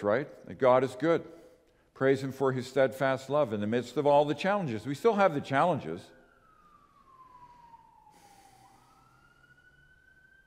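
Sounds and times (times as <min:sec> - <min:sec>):
speech: 0:00.0 - 0:01.4, 0:02.0 - 0:06.2
ambulance siren wailing outside: 0:03.2 - 0:10.4.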